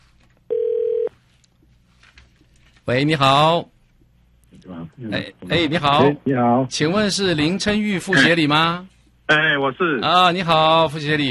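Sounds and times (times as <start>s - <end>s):
telephone ringback tone before a call connects: 0.5s - 1.1s
speech: 2.9s - 3.7s, 5.0s - 11.3s.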